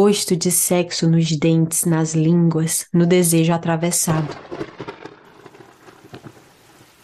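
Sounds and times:
speech: 0.0s - 5.0s
thunder rumbling: 4.0s - 7.0s
heavy rain: 4.4s - 7.0s.

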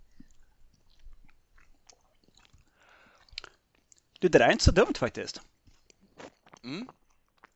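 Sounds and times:
chewing boiled potato with herring brine: 0.0s - 4.2s, 5.5s - 7.5s
speech: 4.2s - 5.5s, 6.7s - 7.0s.

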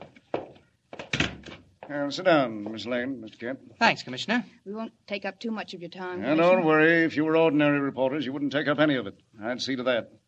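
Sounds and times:
short rattle of an office door: 1.0s - 1.6s
office door swinging shut and latching: 1.0s - 1.7s
speech: 1.9s - 10.2s.

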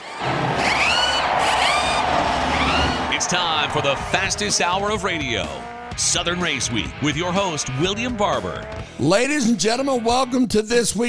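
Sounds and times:
race car engines starting and revving: 0.0s - 6.0s
speech: 3.3s - 11.0s.

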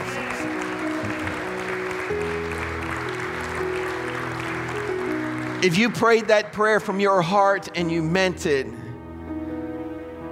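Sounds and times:
crowd clapping: 0.0s - 7.8s
speech: 5.6s - 8.8s.

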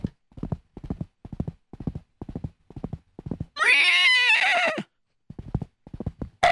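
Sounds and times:
horse galloping hoofbeats: 0.0s - 3.6s, 5.3s - 6.4s
horse whinnying: 3.6s - 4.9s.

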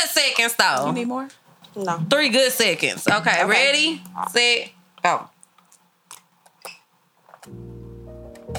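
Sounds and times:
speech: 0.2s - 5.4s
people gulping and sipping liquor: 2.9s - 7.6s.

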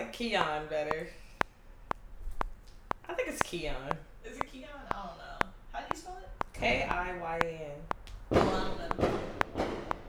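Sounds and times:
fireworks exploding outside: 0.0s - 10.0s
speech: 0.1s - 1.2s, 3.1s - 9.2s.

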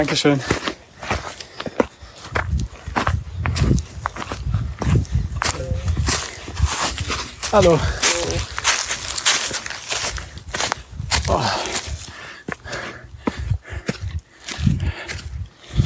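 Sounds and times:
speech: 0.0s - 0.7s, 7.5s - 8.5s
scuffing footsteps: 0.0s - 15.8s
person exclaiming: 11.2s - 11.8s
heavy panting while walking uphill: 11.4s - 15.8s.

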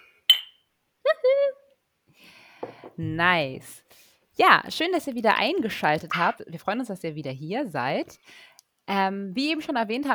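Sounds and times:
glasses clinking in a toast: 0.3s - 0.6s
speech: 3.0s - 10.1s.

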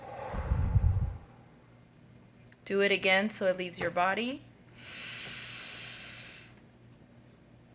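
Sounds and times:
forceful exhale: 0.0s - 1.6s, 4.8s - 6.6s
speech: 2.7s - 4.5s.

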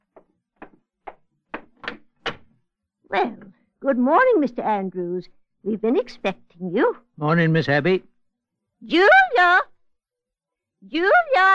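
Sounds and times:
hollow door thuds at the entrance of a white homestead: 0.6s - 2.6s
speech: 3.1s - 8.1s, 8.8s - 9.7s, 10.8s - 11.5s.

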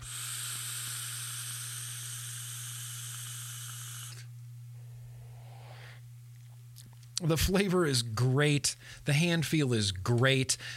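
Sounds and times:
vape coil sizzling and hissing during an inhale: 0.0s - 4.3s
low hum: 0.0s - 10.7s
speech: 7.2s - 10.7s.

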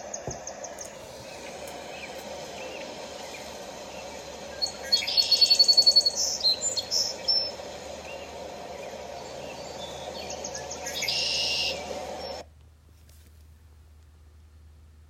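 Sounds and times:
steady low background noise: 0.0s - 15.0s
red-winged blackbird calling in spring: 1.9s - 11.8s.

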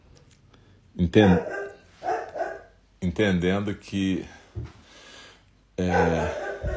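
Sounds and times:
speech: 1.0s - 1.6s, 3.1s - 4.8s, 5.8s - 6.7s
dog barking: 1.2s - 2.8s, 5.8s - 6.7s.

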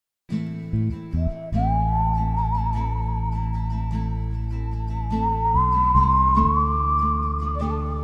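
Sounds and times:
low instrumental music: 0.3s - 8.0s
person whistling a long note: 1.1s - 8.0s.

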